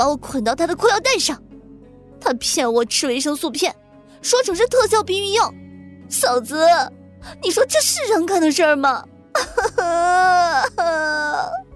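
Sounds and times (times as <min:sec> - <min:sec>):
speech: 0:00.0 - 0:01.5, 0:02.2 - 0:11.6
woman crying loudly: 0:09.4 - 0:11.6.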